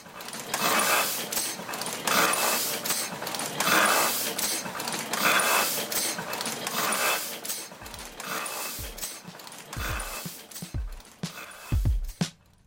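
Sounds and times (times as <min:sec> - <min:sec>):
Heidelberg windmill printing press pulling paper and printing in a print shop: 0:00.0 - 0:12.5.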